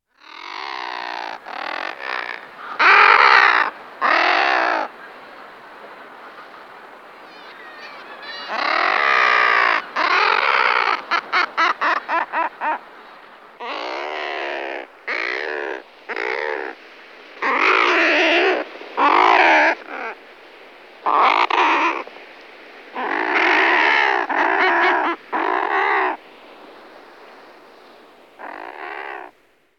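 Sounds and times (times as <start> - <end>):
thick-billed murre Uria lomvia calling: 0.2 - 4.9, 7.3 - 12.9, 13.6 - 16.8, 17.4 - 20.2, 21.0 - 22.1, 23.0 - 26.2, 28.4 - 29.4.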